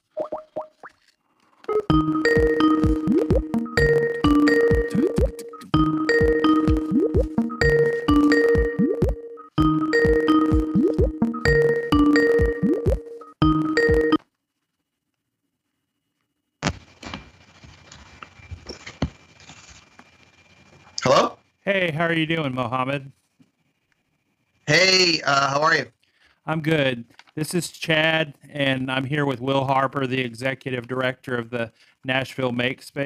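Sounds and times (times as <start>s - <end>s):
phone call ringing tone while dialing: 1.7s - 14.2s
speech: 22.0s - 23.2s, 24.7s - 33.0s.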